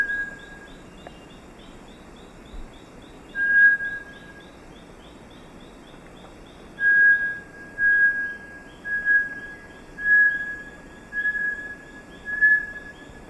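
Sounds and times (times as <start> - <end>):
Bartlett's tinamou song in the eastern lowlands of South America: 0.0 - 0.6, 3.4 - 4.4, 6.8 - 13.2
quiet hiss: 0.0 - 13.2.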